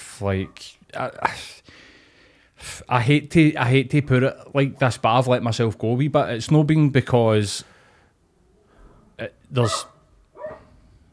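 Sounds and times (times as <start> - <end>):
speech: 0.2 - 1.8, 2.6 - 7.7, 9.2 - 9.9
dog barking: 9.6 - 10.7.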